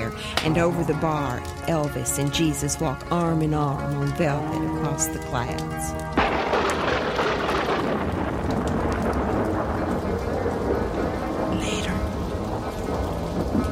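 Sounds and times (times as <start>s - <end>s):
heavy rain outside: 0.0s - 13.6s
speech: 0.4s - 6.4s
deep rolling thunder: 6.2s - 13.6s.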